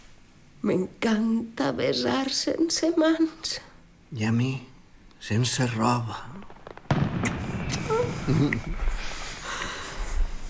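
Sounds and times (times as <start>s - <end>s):
speech: 0.6s - 6.5s, 7.9s - 8.9s
fireworks rockets exploding with pops, cracks and booms: 5.3s - 10.4s.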